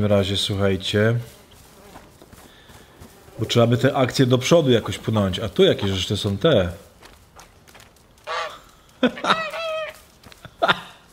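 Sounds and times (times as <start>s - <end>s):
speech: 0.0s - 1.4s, 3.4s - 6.9s, 9.0s - 9.4s
goose honking in a video game: 8.2s - 8.6s, 9.2s - 10.0s
laughter: 8.9s - 11.0s.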